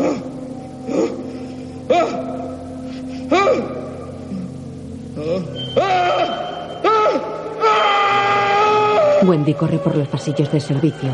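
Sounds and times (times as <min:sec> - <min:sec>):
low steady droning background: 0:00.0 - 0:11.1
man asleep at a table screaming in his sleep: 0:05.2 - 0:09.2
speech: 0:09.3 - 0:11.1.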